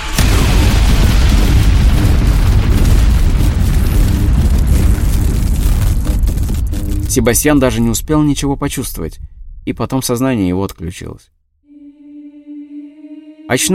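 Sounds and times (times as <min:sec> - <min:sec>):
launcher firing with a booming blast: 0:00.0 - 0:09.7
heavy roar and rumble: 0:00.0 - 0:10.8
speech: 0:07.1 - 0:11.4, 0:13.5 - 0:13.7.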